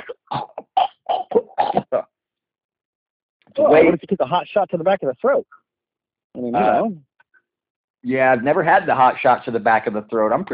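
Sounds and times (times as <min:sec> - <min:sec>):
harsh voiced coughs: 0:00.0 - 0:02.0
speech: 0:03.7 - 0:05.6, 0:06.4 - 0:07.1, 0:08.0 - 0:10.5.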